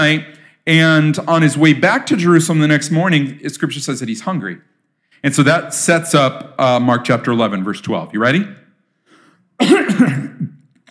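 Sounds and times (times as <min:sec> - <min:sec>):
speech: 0:00.0 - 0:08.6, 0:09.6 - 0:10.5
person coughing: 0:09.6 - 0:10.6
rough gravelly throat clearing: 0:09.6 - 0:10.7.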